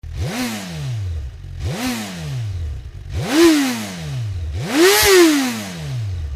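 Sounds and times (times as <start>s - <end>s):
Suzuki GSX-R1000 motorcycle engine: 0.0s - 6.3s.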